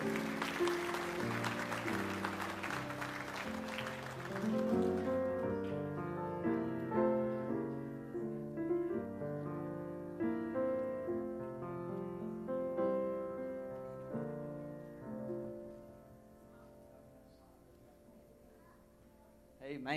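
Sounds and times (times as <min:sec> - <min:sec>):
audience clapping by hand: 0:00.0 - 0:05.7
sustained keyboard chords: 0:00.0 - 0:16.6.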